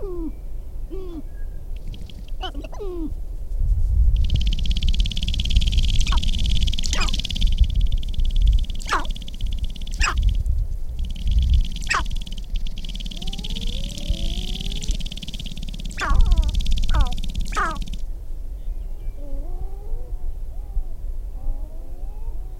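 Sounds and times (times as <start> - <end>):
constant high buzz: 0.0 - 21.3
sharp-tailed grouse making clicking pops: 1.7 - 2.9, 4.1 - 18.1.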